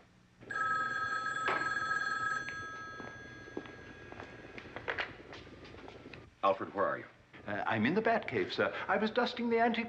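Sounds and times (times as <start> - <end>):
telephone bell ringing: 0.5 - 4.8
speech: 6.4 - 9.8.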